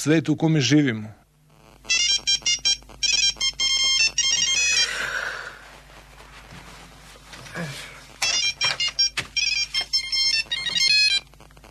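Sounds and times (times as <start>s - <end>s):
speech: 0.0s - 1.2s
mobile phone ringtone: 1.6s - 5.2s, 8.1s - 11.4s.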